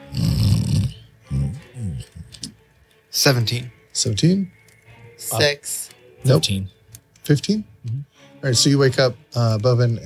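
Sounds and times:
person imitating snoring: 0.0s - 2.3s
speech: 3.2s - 4.6s, 5.2s - 10.0s.

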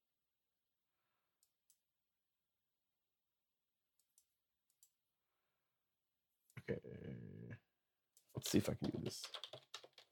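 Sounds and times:
speech: 6.7s - 7.6s, 8.4s - 9.6s
soft quick keyboard clicks as a password is typed: 8.5s - 10.1s.

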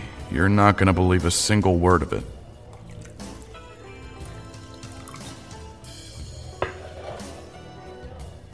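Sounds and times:
speech: 0.3s - 2.4s
drink pouring into a glass, trickling and splashing: 2.2s - 8.3s
sharp glass clink: 6.6s - 7.4s.

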